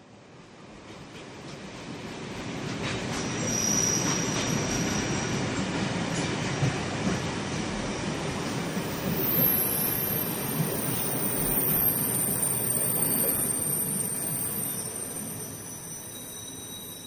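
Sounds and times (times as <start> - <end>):
train rumbling through a station: 0.0 - 17.0
train wheels squealing: 2.8 - 6.3, 7.9 - 17.0.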